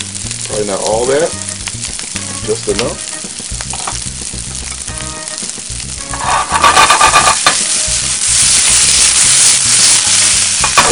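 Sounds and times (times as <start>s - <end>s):
vegetables sizzling in a hot pan with rice and oil: 0.0s - 10.8s
speech: 0.6s - 3.1s
scraping and stirring clatter: 6.1s - 7.6s.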